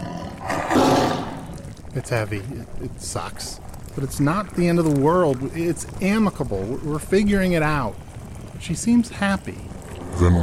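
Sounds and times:
black saber-toothed tiger roaring: 0.0 - 1.7, 10.0 - 10.4
speech: 2.0 - 8.0, 8.6 - 10.4.

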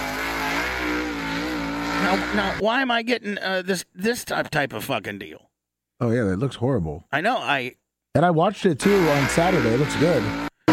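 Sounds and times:
race car engine revving: 0.0 - 2.6, 8.8 - 10.7
speech: 2.1 - 10.5.

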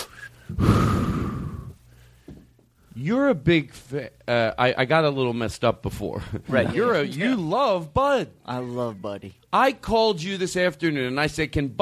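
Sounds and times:
deep breath in: 0.4 - 2.3
speech: 3.0 - 11.8.

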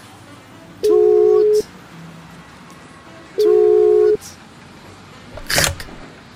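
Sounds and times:
steady electronic phone ringback tone: 0.8 - 1.7, 3.4 - 4.2
sharp click of a call picked up: 5.4 - 6.0.

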